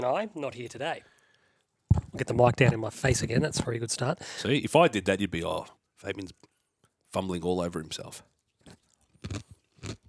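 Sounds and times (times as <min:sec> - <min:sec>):
speech: 0:00.0 - 0:01.1, 0:02.2 - 0:06.5, 0:07.1 - 0:09.5
crunchy chewing: 0:08.3 - 0:10.0.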